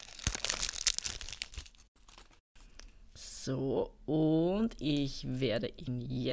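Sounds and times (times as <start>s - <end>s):
fortune cookie plastic wrapper crinkling and tearing: 0.0s - 2.4s
speech: 3.4s - 6.3s.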